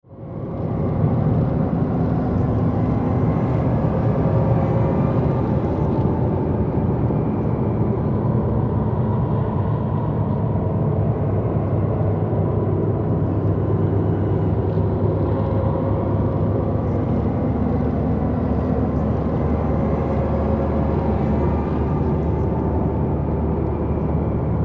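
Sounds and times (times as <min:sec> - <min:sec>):
horror drone: 0:00.1 - 0:24.6.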